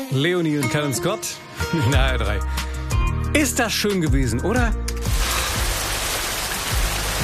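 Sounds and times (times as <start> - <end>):
speech: 0.1 - 2.7, 3.3 - 4.9
steady rain falling on roofs and streets: 5.1 - 7.2.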